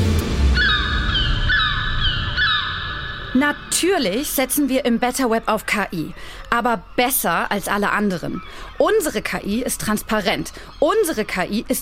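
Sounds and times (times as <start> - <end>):
steady low rumble: 0.0 - 3.7
seagulls calling: 0.4 - 11.8
speech: 3.4 - 11.8.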